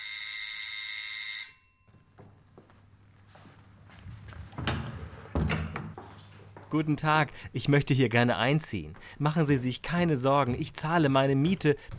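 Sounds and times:
loud electronic doorbell ringing at a shared flat door: 0.0s - 2.2s
footsteps: 1.9s - 7.0s, 8.4s - 11.9s
clunks of a door being handled: 4.5s - 6.2s
speech: 6.7s - 11.9s.

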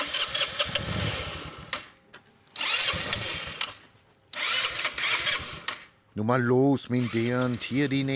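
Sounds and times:
small 125cc automatic scooter engine cranking to start: 0.0s - 2.0s, 2.6s - 6.0s, 7.0s - 8.1s
speech: 6.2s - 8.1s.

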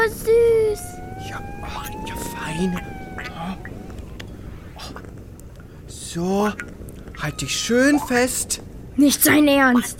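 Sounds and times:
speech: 0.0s - 3.7s, 6.1s - 9.9s
small creature purring in a steady low rumble: 0.6s - 5.0s
high chirping calls: 0.7s - 5.0s.

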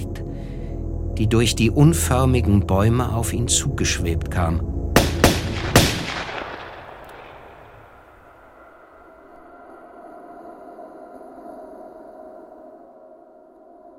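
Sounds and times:
low quiet rumble: 0.0s - 13.9s
speech: 1.2s - 4.7s
gunshots with long decay: 5.0s - 8.5s.

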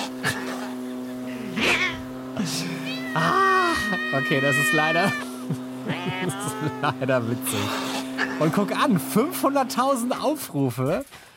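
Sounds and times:
laughter: 0.0s - 9.7s
lawnmower engine droning hum: 0.0s - 11.3s
cat meowing and yowling: 1.6s - 2.1s, 2.8s - 5.3s
speech: 2.4s - 3.4s, 4.1s - 11.3s.

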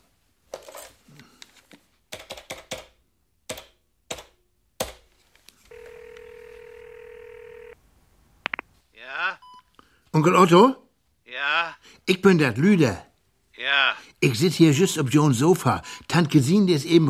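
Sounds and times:
telephone dialing clicks: 5.7s - 7.8s
speech: 10.2s - 10.8s, 11.6s - 13.1s, 13.9s - 17.0s.

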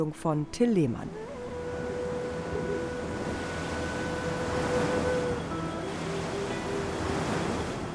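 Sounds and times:
speech: 0.0s - 1.3s
fresh wind: 0.0s - 7.9s
Atlantic Ocean surf washing against quay edges at Las Palmas, Gran Canaria: 1.3s - 7.9s.

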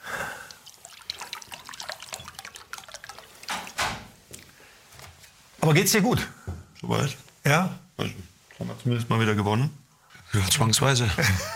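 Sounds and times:
water poured into a glass in an arena box: 0.4s - 4.0s
speech: 5.6s - 11.5s.

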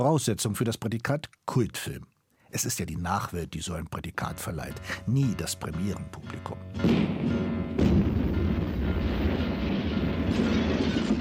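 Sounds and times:
speech: 0.0s - 7.9s
house blown up in a demolition explosion: 6.8s - 11.1s.

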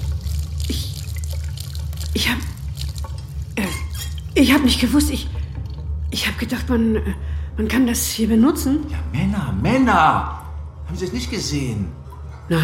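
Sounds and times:
tap water gushing into a sink: 0.0s - 4.4s
low steady hum: 0.0s - 12.6s
speech: 4.4s - 5.4s, 6.1s - 12.6s.

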